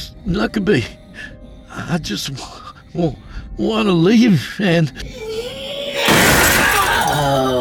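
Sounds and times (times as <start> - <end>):
speech: 0.2 - 5.3
first-floor windows bursting outward with loud shattering glass: 6.0 - 7.5.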